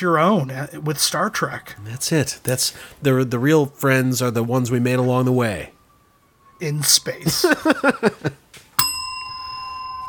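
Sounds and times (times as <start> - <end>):
speech: 0.0 - 5.8, 6.6 - 8.4
laughter: 7.2 - 8.4
bright metallic bell strike ringing: 8.8 - 10.0.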